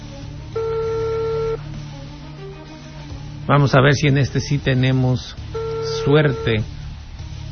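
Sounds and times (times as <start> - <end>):
telephone ringback tone on a call to a ministerial office line: 0.5 - 1.6, 5.6 - 6.6
speech: 3.5 - 6.8.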